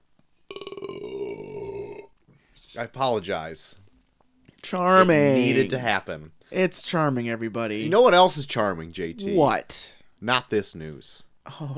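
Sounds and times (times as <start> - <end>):
long loud belch: 0.5 - 2.1
speech: 2.8 - 3.8, 4.6 - 11.7.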